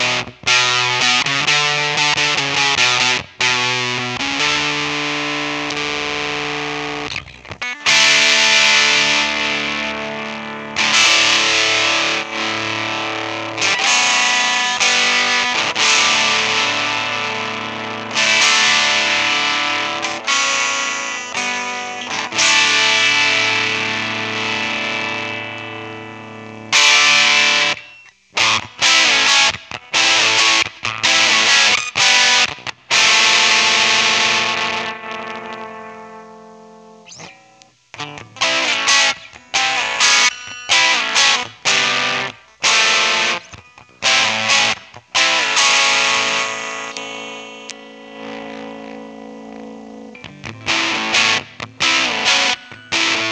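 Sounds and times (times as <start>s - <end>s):
Maestro Fuzz-Tone FZ-1 guitar tone: 0.0s - 53.2s.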